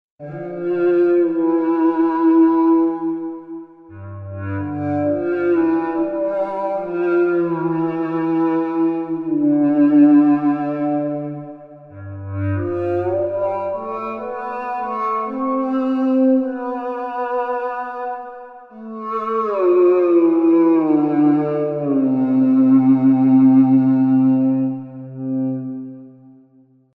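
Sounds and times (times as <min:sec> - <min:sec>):
deep cello: 0:00.2 - 0:26.5.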